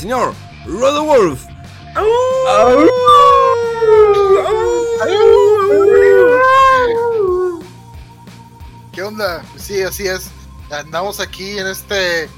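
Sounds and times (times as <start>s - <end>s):
speech: 0.0s - 6.3s, 9.0s - 12.3s
wolf tied up in a yard howling: 2.0s - 7.7s.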